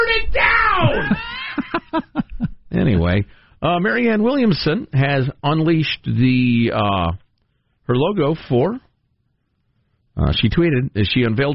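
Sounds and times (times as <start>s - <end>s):
loud strained yell mimicking an overloaded microphone: 0.0s - 1.6s
laughter: 0.8s - 3.2s
speech: 2.9s - 7.2s, 7.9s - 8.9s, 10.2s - 11.5s.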